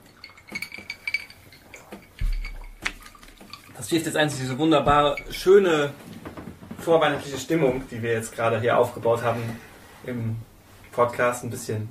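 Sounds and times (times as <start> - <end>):
glasses clinking in a toast: 0.0 - 6.0
speech: 3.8 - 6.1, 6.8 - 11.8.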